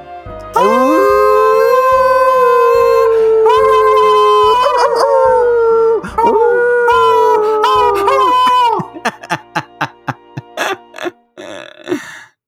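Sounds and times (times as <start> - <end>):
long wavering howls: 0.6 - 9.4
short sharp yelps: 0.6 - 11.1
laughter: 0.6 - 12.2.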